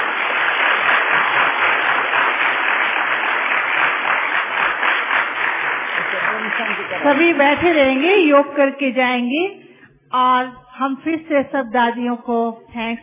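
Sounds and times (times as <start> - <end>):
audience applause at a gathering: 0.0 - 8.3
speech: 7.1 - 13.0.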